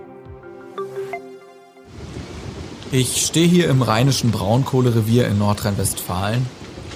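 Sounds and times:
sustained musical tones: 0.0 - 2.0
strong outdoor wind at open-pit mine edge: 1.9 - 6.9
speech: 2.9 - 6.6.

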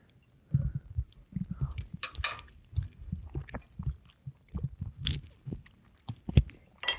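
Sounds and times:
biting and chewing a tofu dish: 0.6 - 6.9.

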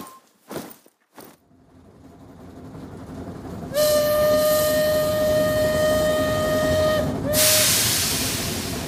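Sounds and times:
long loud train whistle: 3.7 - 8.5
burst of hiss: 7.3 - 8.8.

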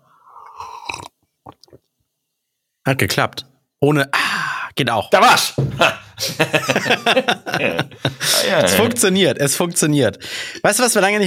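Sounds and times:
soft swallowing or lip sounds: 0.3 - 2.0
wet slurping while drinking: 0.4 - 1.9
speech: 2.9 - 4.2, 4.8 - 11.2
laughter: 5.7 - 9.2.

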